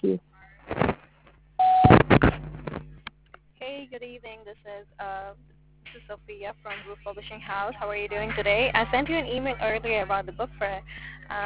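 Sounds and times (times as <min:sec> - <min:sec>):
phone answering machine beep: 0:01.6 - 0:02.0
speech: 0:06.1 - 0:11.4.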